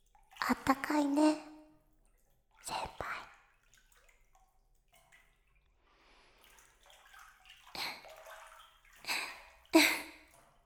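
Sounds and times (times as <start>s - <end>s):
hot water poured over shoulders in a bath: 0.0s - 10.6s
speech: 0.5s - 1.4s.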